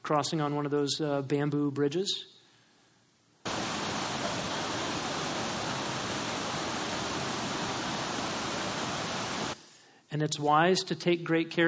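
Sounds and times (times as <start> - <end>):
speech: 0.1 - 2.4, 10.2 - 11.6
rushing river water on trails in the Doe-speaking area: 3.5 - 9.6.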